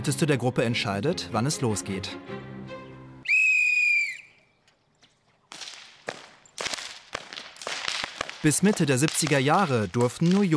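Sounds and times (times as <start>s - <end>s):
speech: 0.0s - 2.5s, 8.4s - 10.5s
shrill whistle blast: 3.2s - 4.5s
children cracking elm wood whips outdoors in Eschbach: 5.5s - 10.5s.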